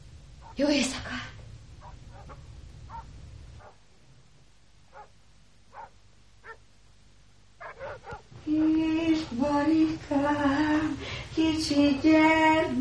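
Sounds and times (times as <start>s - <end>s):
low rumbling background: 0.0s - 12.0s
dogs barking: 0.4s - 0.6s, 1.8s - 3.8s, 4.9s - 6.6s, 7.6s - 8.3s
speech: 0.6s - 1.4s, 8.5s - 12.7s.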